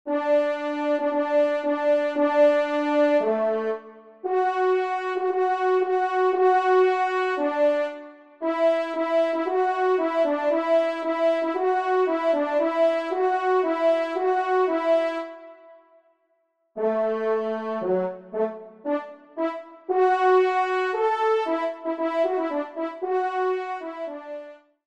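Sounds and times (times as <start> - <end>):
horn quartet: 0.1 - 15.8, 16.8 - 24.7.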